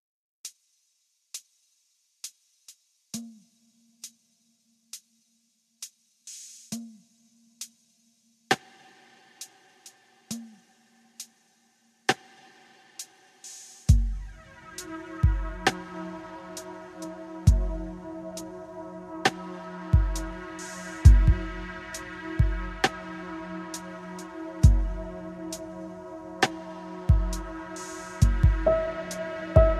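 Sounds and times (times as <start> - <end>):
spa music at 432 Hz: 14.4 - 29.7.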